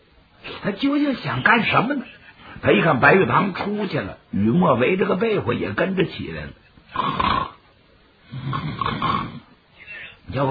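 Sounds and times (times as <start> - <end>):
speech: 0.6 - 7.3
voice imitating snoring with rasping inhale and throaty rumbling snore: 6.9 - 7.6, 8.2 - 9.5.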